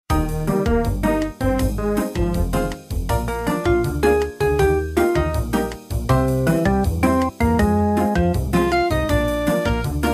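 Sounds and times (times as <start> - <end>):
fast food restaurant music: 0.1 - 10.1.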